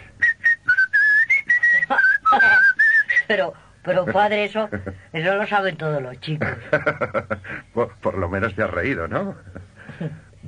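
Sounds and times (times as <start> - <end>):
person whistling a short tune: 0.2 - 3.3
speech: 3.3 - 10.4.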